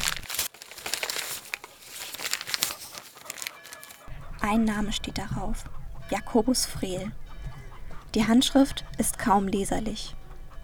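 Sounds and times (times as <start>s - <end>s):
cold crumpled paper note being unfolded: 0.0s - 4.1s
speech: 4.5s - 7.2s, 8.1s - 10.2s.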